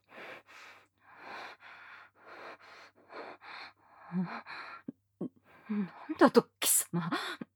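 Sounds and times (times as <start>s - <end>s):
heavy dog-like panting breath: 0.0s - 4.9s
speech: 4.1s - 4.5s, 5.2s - 7.4s.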